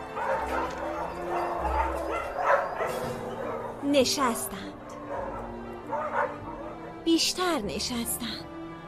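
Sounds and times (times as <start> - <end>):
several dogs barking and whimpering in an echoing space: 0.0 - 7.0
speech: 3.9 - 4.7, 7.1 - 8.5.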